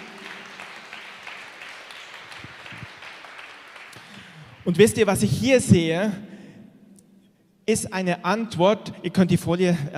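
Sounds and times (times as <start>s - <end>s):
crowd applauding: 0.0s - 4.9s
speech: 4.7s - 6.3s, 7.7s - 9.9s.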